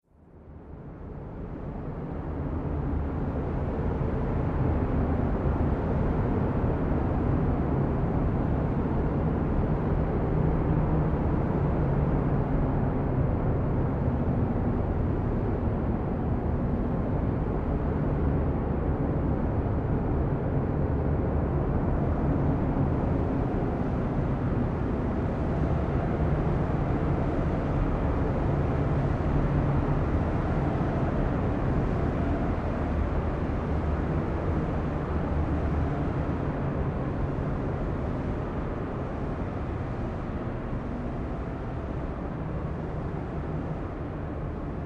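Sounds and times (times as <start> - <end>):
deep tundra winds: 0.6 - 44.8.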